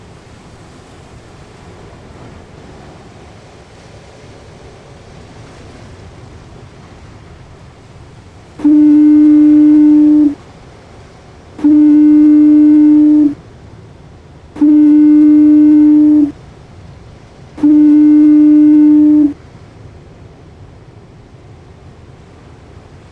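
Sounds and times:
soft constant wash of wind or sea: 0:00.0 - 0:23.1
generated lighthouse foghorn blasts: 0:08.6 - 0:10.4, 0:11.6 - 0:13.4, 0:14.6 - 0:16.3, 0:17.6 - 0:19.4.

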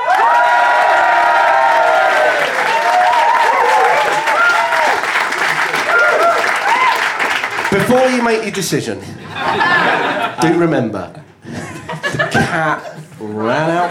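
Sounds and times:
whoops and shouting voices: 0:00.0 - 0:05.0, 0:05.9 - 0:07.1
live studio audience applauding during a comedy show vote: 0:00.0 - 0:08.7
speech: 0:07.9 - 0:11.6, 0:12.3 - 0:13.8
laughter: 0:09.0 - 0:10.7, 0:11.4 - 0:13.8.

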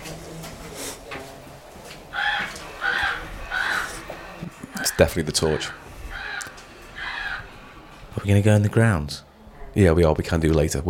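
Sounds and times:
light-triggered toy raven cawing electronically: 0:02.1 - 0:04.0, 0:04.7 - 0:07.6
speech: 0:05.0 - 0:05.8, 0:08.2 - 0:10.8.

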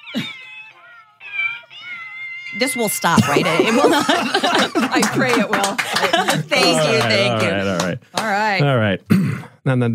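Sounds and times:
push-button toy playing recorded cat meows: 0:00.0 - 0:02.6
speech: 0:02.5 - 0:09.9
laughter: 0:03.1 - 0:08.0.

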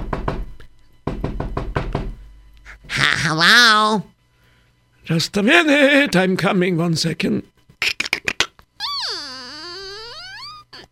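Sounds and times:
knocking on a wooden door: 0:00.0 - 0:02.2
speech: 0:03.2 - 0:04.1, 0:05.1 - 0:07.5.

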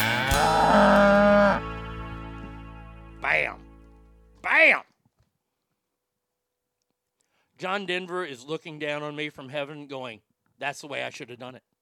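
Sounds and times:
cow mooing: 0:00.2 - 0:01.6
speech: 0:07.6 - 0:11.7.

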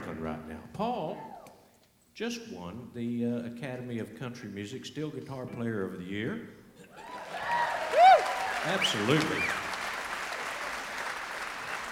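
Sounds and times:
speech: 0:02.2 - 0:07.1, 0:08.6 - 0:09.6
audience applause: 0:07.0 - 0:11.8.

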